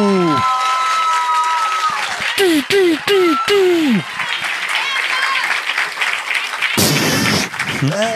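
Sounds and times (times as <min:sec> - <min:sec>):
audience applauding: 0:00.0 - 0:08.1
loud noisy burst: 0:06.8 - 0:07.8.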